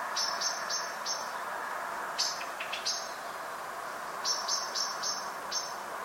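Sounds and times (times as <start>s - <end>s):
Common blackbird Turdus merula giving thin sharp high call notes: 0.1s - 1.5s, 2.2s - 3.4s, 4.2s - 5.8s.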